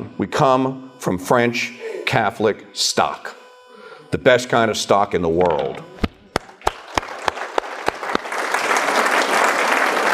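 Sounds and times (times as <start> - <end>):
speech: 0.2 - 3.4, 4.1 - 6.0
audience applause: 6.3 - 10.1.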